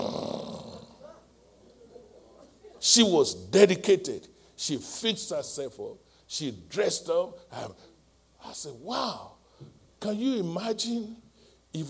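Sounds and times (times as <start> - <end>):
person imitating raspy snoring with their voice: 0.0 - 1.0
speech: 2.8 - 11.8.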